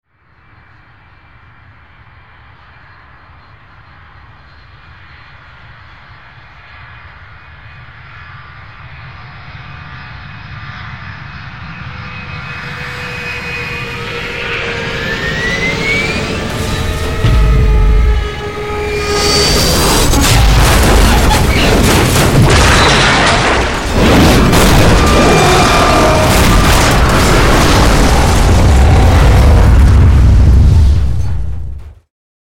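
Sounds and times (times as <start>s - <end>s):
passenger airplane crashing and falling: 4.0s - 32.0s.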